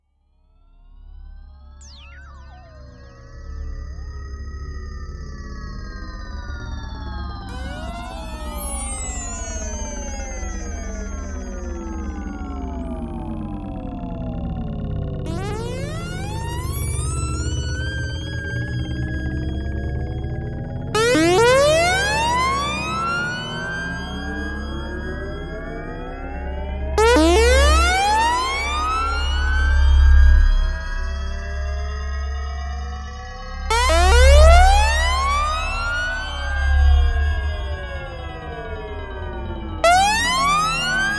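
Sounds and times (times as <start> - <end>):
Vermona Mono Lancet analog synthesizer VCO with envelope: 7.5 - 13.7, 15.2 - 20.1, 20.9 - 31.5, 33.6 - 38.6, 39.8 - 41.1.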